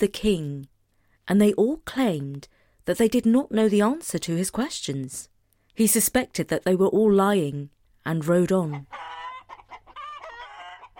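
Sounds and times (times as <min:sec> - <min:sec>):
speech: 0:00.0 - 0:00.7, 0:01.3 - 0:09.2
hens clucking and squawking: 0:08.6 - 0:10.9.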